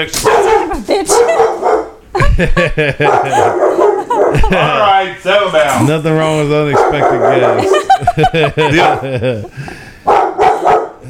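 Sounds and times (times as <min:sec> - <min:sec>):
dog barking excitedly at a visiting neighbor: 0:00.0 - 0:02.0, 0:02.9 - 0:04.8, 0:06.7 - 0:09.3, 0:10.0 - 0:11.0
speech: 0:00.0 - 0:09.8
laughter: 0:02.1 - 0:09.9.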